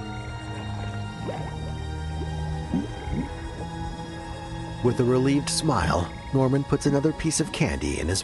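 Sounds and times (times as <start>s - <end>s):
gurgling bubbles rising from swampy mud: 0.0s - 4.8s
low murky rumble of a car sinking into swampy mud: 0.0s - 8.2s
speech: 4.8s - 8.2s.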